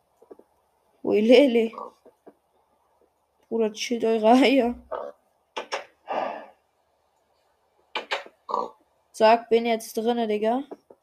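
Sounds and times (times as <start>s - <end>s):
speech: 1.1s - 2.0s, 3.5s - 5.2s, 9.2s - 10.8s
piglet snorting and oinking while being led along: 1.7s - 2.0s, 4.9s - 5.9s, 8.0s - 8.8s.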